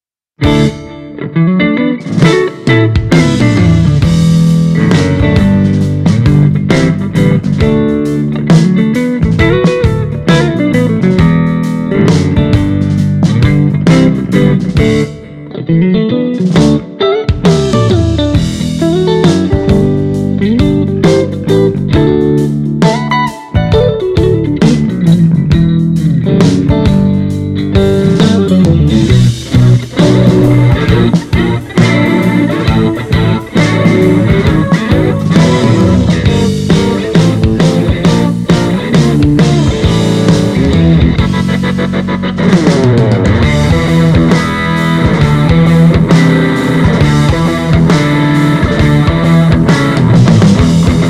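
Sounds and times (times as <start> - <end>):
Stratocaster electric guitar: 0.0 - 51.0.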